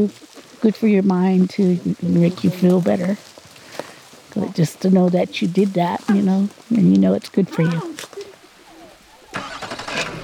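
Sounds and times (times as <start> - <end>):
speech: 0.0 - 3.3, 4.4 - 8.1
car engine cranking and starting: 9.2 - 10.2.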